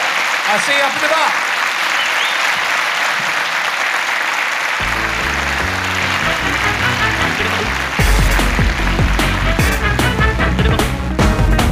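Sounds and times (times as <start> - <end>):
crowd applauding: 0.0 - 11.6
speech: 0.5 - 1.5
music with a thumping beat: 8.0 - 11.6.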